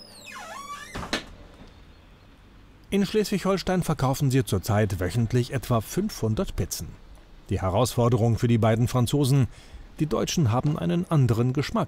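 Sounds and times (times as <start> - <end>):
door squealing while being closed: 0.0 - 1.4
door shutting with a soft thud and sharper knock: 0.0 - 1.7
speech: 2.9 - 11.8.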